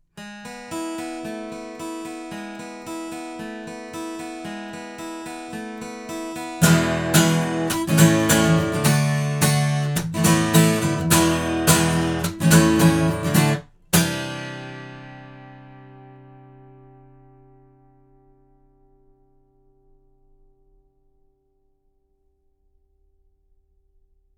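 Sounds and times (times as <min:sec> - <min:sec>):
guitar recorded with omni microphone: 0:00.2 - 0:19.6.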